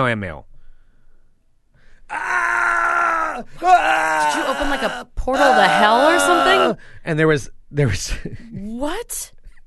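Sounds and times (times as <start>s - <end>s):
speech: 0.0s - 0.5s, 3.4s - 9.4s
person breathing: 0.5s - 2.1s, 6.8s - 7.0s
voice imitating terrified screaming: 2.1s - 6.8s.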